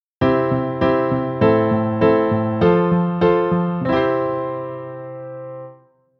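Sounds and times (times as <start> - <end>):
piano plagal cadence: 0.2 - 5.9.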